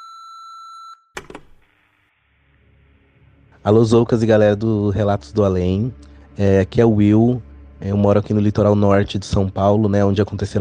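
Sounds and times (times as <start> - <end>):
voicemail new-message electronic beep: 0.0 - 1.1
speech: 3.6 - 10.5.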